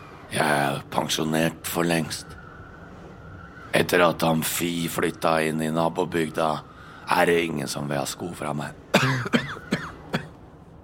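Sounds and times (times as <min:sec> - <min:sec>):
speech: 0:00.3 - 0:02.4, 0:03.8 - 0:09.7
old man coughing raspily: 0:08.9 - 0:10.4.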